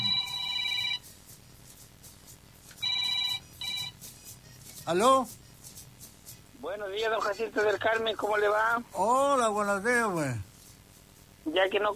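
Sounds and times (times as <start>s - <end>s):
telephone ringing in trilling bursts: 0.0s - 1.0s, 2.8s - 3.9s
speech: 4.9s - 5.4s, 6.6s - 10.5s, 11.4s - 11.9s.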